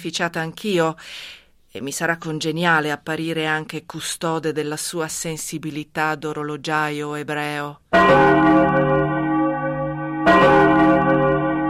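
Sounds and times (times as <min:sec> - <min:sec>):
speech: 0:00.0 - 0:09.1
church bells ringing: 0:07.9 - 0:11.6.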